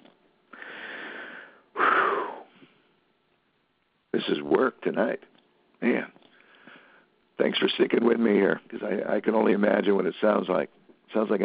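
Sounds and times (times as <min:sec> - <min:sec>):
person taking a deep breath with a slight wheeze: 0:00.5 - 0:02.9, 0:06.3 - 0:07.1
speech: 0:04.2 - 0:06.2, 0:07.4 - 0:11.4.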